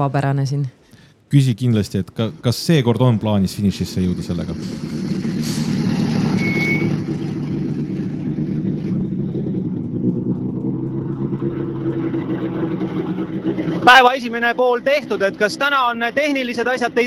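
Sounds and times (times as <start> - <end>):
speech: 0.0 - 5.6, 13.9 - 17.0
Volvo rally car engine rumbling: 2.2 - 17.0
high-pitched squeal: 4.5 - 7.7.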